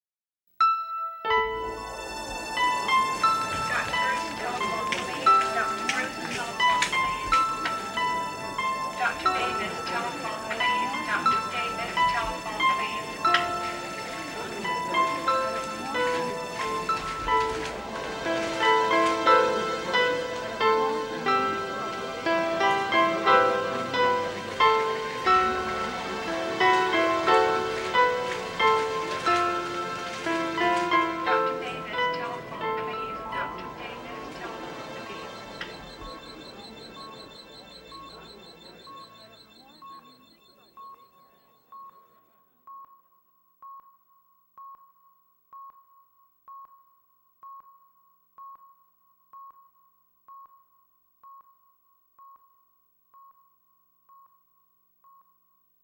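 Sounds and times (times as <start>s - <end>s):
piano music with hospital: 0.6s - 40.9s.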